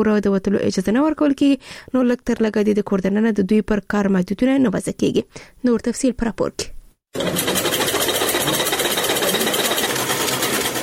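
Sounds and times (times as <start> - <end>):
speech: 0.0 - 7.6
sewing machines running in a tailoring workshop: 7.2 - 10.8.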